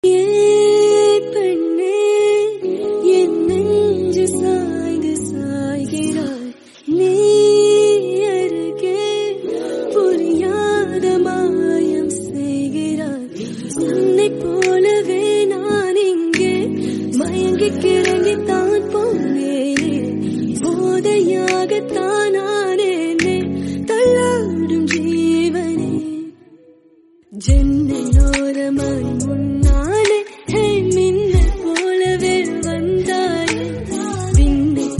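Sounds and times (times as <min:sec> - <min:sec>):
woman singing in Tamil: 0:00.0 - 0:34.9.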